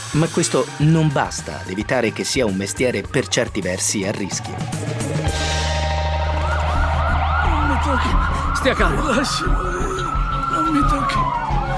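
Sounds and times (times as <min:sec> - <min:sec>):
speech: 0:00.1 - 0:05.7, 0:07.9 - 0:10.1
ambulance siren wailing: 0:04.2 - 0:11.7.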